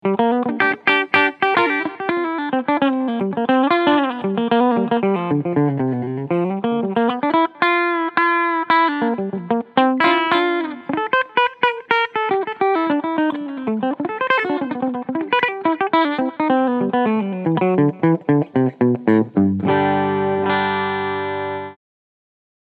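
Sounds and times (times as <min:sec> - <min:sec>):
guitar through a clean pickup: 0:00.0 - 0:21.8.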